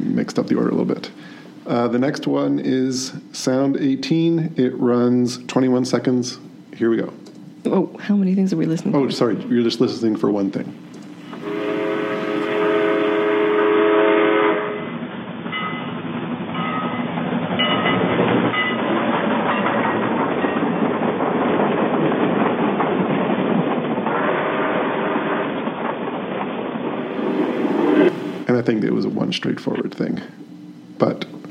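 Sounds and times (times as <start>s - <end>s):
train passing with rumble and rhythmic rail clatter: 0.0s - 31.4s
speech: 0.2s - 10.9s, 29.6s - 30.4s
train horn: 11.3s - 15.0s.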